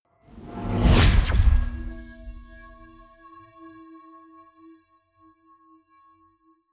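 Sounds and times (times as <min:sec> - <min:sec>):
magic warp personal jump effect: 0:00.4 - 0:03.2.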